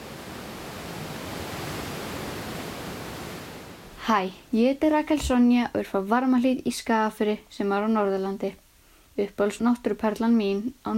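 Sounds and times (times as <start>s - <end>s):
roaring waterfall: 0.0s - 4.0s
speech: 4.0s - 8.6s, 9.2s - 10.9s.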